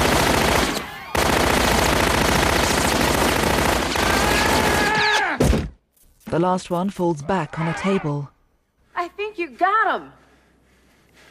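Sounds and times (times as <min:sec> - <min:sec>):
old-fashioned machine gun fire inside a bar: 0:00.0 - 0:05.0
speech: 0:06.4 - 0:08.4, 0:09.0 - 0:10.2.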